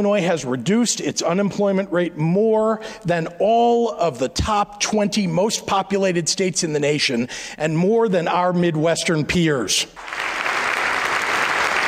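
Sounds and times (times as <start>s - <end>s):
speech: 0.0s - 10.5s
legislators applauding and cheering: 10.0s - 11.8s.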